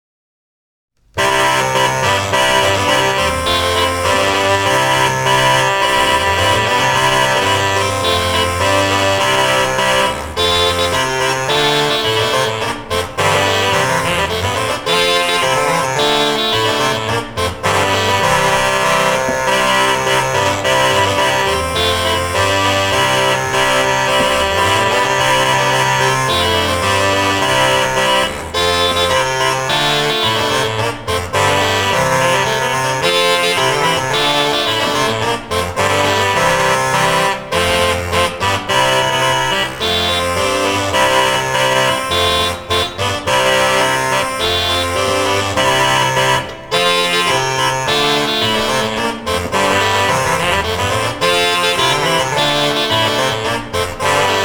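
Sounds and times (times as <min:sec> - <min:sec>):
portative organ playing an intrada: 0:01.2 - 0:54.4.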